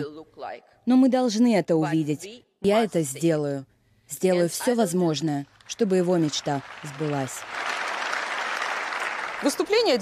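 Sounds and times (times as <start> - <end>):
speech: 0.0 - 7.8, 9.4 - 9.9
large audience applauding after a speech: 5.7 - 9.9.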